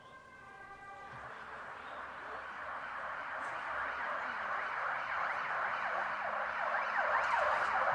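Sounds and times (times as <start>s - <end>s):
police siren wailing: 0.0s - 7.9s.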